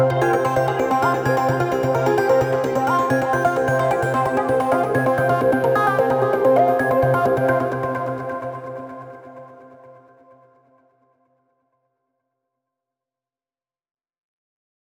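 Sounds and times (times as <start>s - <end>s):
melodic music: 0.1s - 9.1s.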